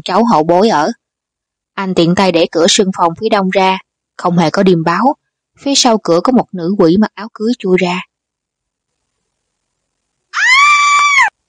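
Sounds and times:
speech: 0.0 - 1.0, 1.8 - 8.1
thin woman screaming in fright: 10.4 - 11.3.

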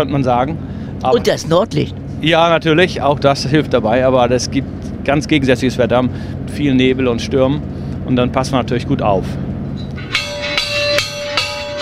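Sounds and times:
speech: 0.0 - 9.4
old ship's bell once used to call passengers to meals: 9.8 - 11.8.

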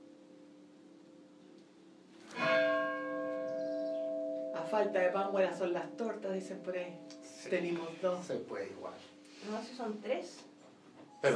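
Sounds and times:
church bell tolling a death knell: 2.4 - 8.0
speech: 4.7 - 10.5.

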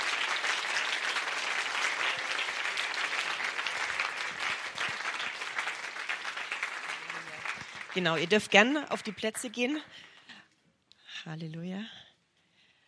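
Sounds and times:
church congregation applauding after a sermon: 0.0 - 9.8
speech: 8.0 - 10.1, 11.2 - 12.0.

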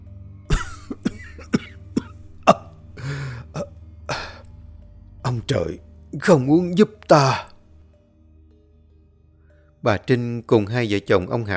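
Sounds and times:
Taoist priest coughing while clutching his chest: 0.5 - 4.4
speech: 5.3 - 7.5, 9.8 - 11.5.

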